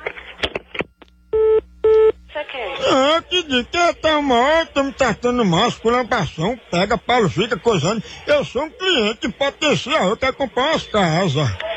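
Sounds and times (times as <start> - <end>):
telephone line electronic beeps: 1.3 - 2.2
speech: 2.8 - 11.6.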